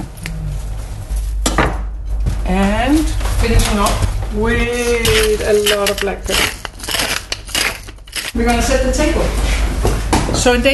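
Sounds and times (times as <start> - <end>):
faint kitchen clatter: 1.1 - 10.7
speech: 3.5 - 6.6, 8.4 - 10.7
knife cutting the crust off a hazelnut-topped dish: 5.0 - 8.4.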